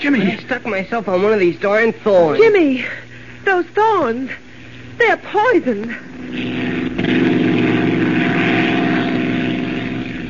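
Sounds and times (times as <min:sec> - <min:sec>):
speech: 0:00.0 - 0:04.4, 0:05.0 - 0:07.3
propeller engine drone inside an aircraft cabin: 0:05.9 - 0:10.2.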